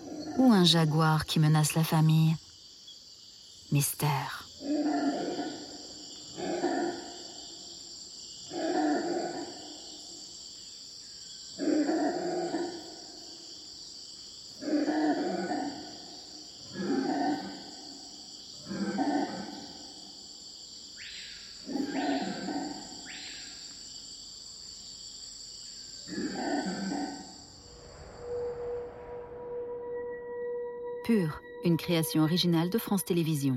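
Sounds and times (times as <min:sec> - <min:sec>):
insect drone in the Amazon rainforest: 0:00.0 - 0:33.5
speech: 0:00.4 - 0:02.4, 0:03.7 - 0:05.3, 0:31.1 - 0:33.5
howler monkey chorus calling in the Amazon rainforest: 0:04.6 - 0:07.7, 0:08.4 - 0:10.1, 0:11.5 - 0:13.3, 0:14.5 - 0:20.2, 0:21.0 - 0:23.7, 0:26.0 - 0:30.7.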